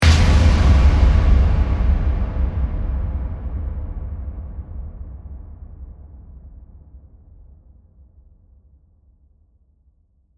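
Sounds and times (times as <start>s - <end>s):
drum hit with reverb: 0.0s - 5.9s.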